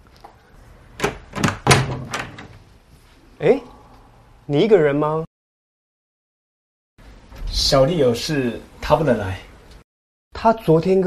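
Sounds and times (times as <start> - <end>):
door being opened with latch and handle clunks and rattles: 1.0 - 2.6
speech: 3.4 - 3.7, 4.5 - 5.2, 7.7 - 9.5, 10.4 - 11.0.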